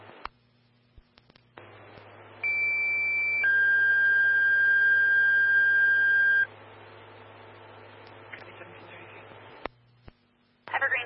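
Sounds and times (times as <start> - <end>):
faint radio static: 0.0 - 11.0
fire dispatch alert electronic paging tones over a radio channel: 2.4 - 6.5.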